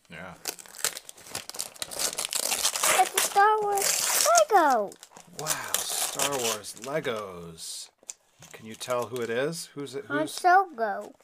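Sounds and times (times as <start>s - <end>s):
speech: 0.1s - 0.6s, 3.6s - 11.2s
gift wrapping paper ripping as a birthday present is torn open: 0.4s - 7.3s.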